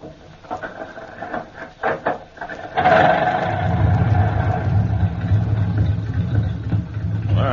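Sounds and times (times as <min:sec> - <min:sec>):
speech: 0:00.5 - 0:00.7
car engine starting and idling: 0:02.4 - 0:07.5.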